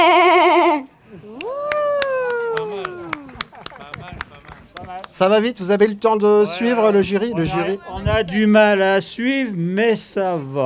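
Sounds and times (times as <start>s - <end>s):
child imitating a ewe bleating: 0.0s - 0.9s
laughter: 0.0s - 9.0s
speech: 5.2s - 10.6s.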